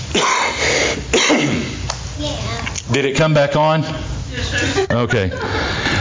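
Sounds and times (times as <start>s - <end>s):
person coughing: 0.1s - 1.8s
throat clearing rasp: 0.1s - 1.8s
speech: 2.9s - 4.0s, 4.6s - 5.8s
laughter: 4.3s - 5.9s.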